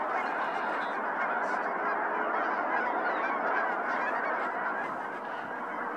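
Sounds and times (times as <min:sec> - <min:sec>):
flock of snow geese honking in flight: 0:00.0 - 0:05.9.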